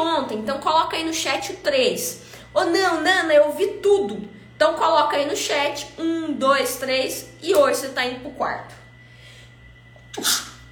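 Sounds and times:
speech: 0.0 - 8.8, 10.2 - 10.5
faint steady hum: 0.0 - 10.7
sneeze: 10.1 - 10.6.

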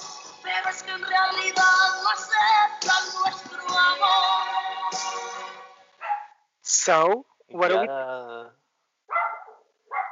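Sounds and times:
speech: 0.7 - 5.6, 6.7 - 8.5
dog barking: 6.0 - 6.4, 9.1 - 10.1.

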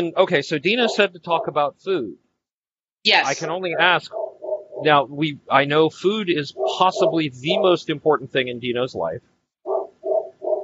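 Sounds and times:
speech: 0.0 - 2.2, 3.0 - 4.2, 4.8 - 9.3
dog barking: 0.8 - 1.6, 4.1 - 4.9, 6.5 - 7.7, 9.6 - 10.6.

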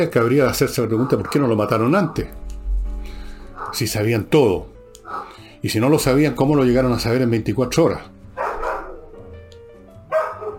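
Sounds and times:
speech: 0.0 - 2.4, 3.7 - 8.2
dogs barking: 0.5 - 2.4, 3.3 - 4.0, 5.0 - 5.5, 8.3 - 9.3, 10.0 - 10.5.

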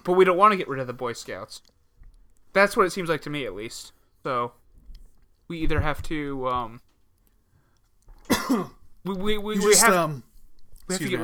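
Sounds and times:
speech: 0.0 - 1.8, 2.5 - 4.6, 5.5 - 6.8, 8.5 - 10.3, 10.9 - 11.2
person coughing: 8.3 - 8.8, 9.6 - 10.2
strained voiced sound: 9.4 - 10.3, 10.9 - 11.2.

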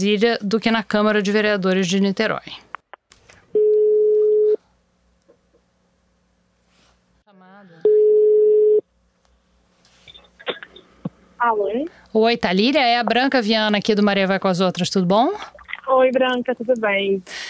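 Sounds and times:
speech: 0.0 - 2.6, 11.4 - 17.4
electronic telephone ringback tones of an outgoing call: 3.6 - 4.6, 7.9 - 8.8.

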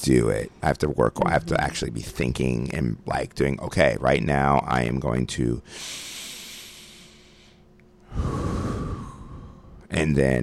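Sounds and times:
speech: 0.0 - 6.2, 8.1 - 8.7, 9.9 - 10.4
deep diaphragmatic breathing: 5.6 - 9.9.

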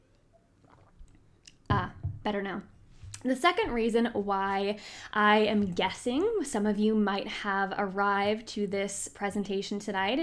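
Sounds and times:
sipping water: 0.5 - 2.0
swallowing water: 0.6 - 1.7
speech: 1.8 - 10.2.

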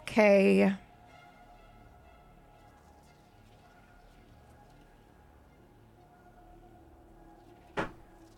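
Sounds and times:
faint tonal drones: 0.0 - 8.3
door opening with a sharp clunk: 7.8 - 8.0.

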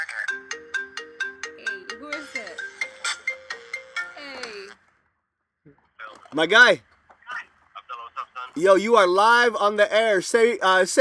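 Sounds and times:
phone ringtone bouncy electronic melody: 0.0 - 4.8
speech: 0.1 - 0.6, 1.9 - 2.7, 5.7 - 6.9, 8.6 - 10.9.

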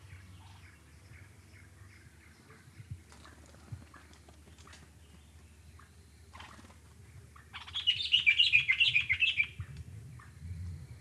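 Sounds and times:
dark-capped bulbul chattering in the Okavango: 7.4 - 9.6.

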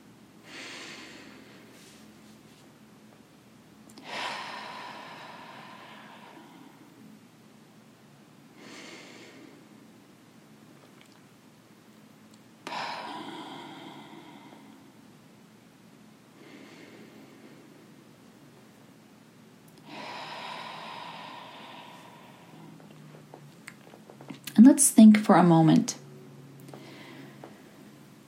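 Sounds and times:
slow deep breaths in through nose and out through mouth: 0.4 - 2.1, 4.0 - 7.1, 8.6 - 9.9, 12.6 - 15.0, 16.3 - 18.2, 19.8 - 24.2, 26.6 - 28.2
speech: 24.6 - 26.0.

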